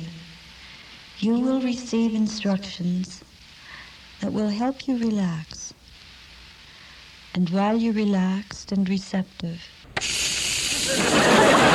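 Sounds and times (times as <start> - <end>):
speech: 1.2 - 3.3, 4.2 - 5.7, 7.4 - 9.8
bacon sizzling in a kitchen: 10.0 - 11.4
laughter: 10.7 - 11.7.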